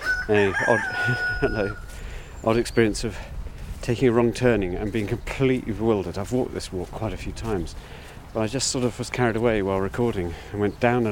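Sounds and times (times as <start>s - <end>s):
rooster crowing cock-a-doodle-doo: 0.0s - 2.0s
speech: 0.3s - 11.0s.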